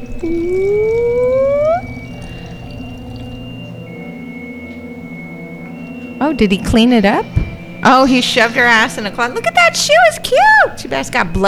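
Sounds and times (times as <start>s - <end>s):
liquid pouring into a glass: 0.0s - 3.7s
speech: 0.2s - 0.6s, 6.3s - 11.4s.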